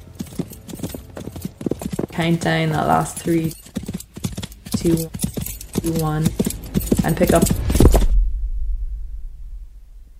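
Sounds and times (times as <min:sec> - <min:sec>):
horse hooves cantering on firm ground toward a jump fence: 0:00.0 - 0:08.0
speech: 0:02.2 - 0:03.6, 0:04.8 - 0:05.2, 0:05.8 - 0:07.6.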